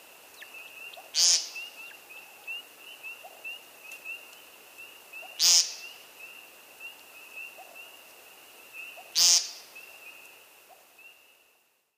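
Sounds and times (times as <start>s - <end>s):
American Woodcock calling: 0.4s - 4.3s, 5.1s - 6.0s, 8.8s - 10.0s.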